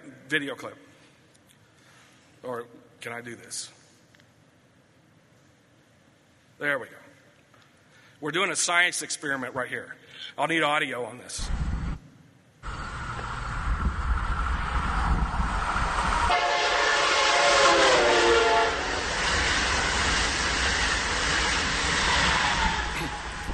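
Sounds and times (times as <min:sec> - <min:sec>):
speech: 0:00.3 - 0:00.9, 0:02.4 - 0:03.8, 0:06.6 - 0:07.1, 0:08.2 - 0:11.6
train rumbling past: 0:12.6 - 0:23.5
train horn blaring: 0:16.3 - 0:19.8, 0:21.5 - 0:23.5.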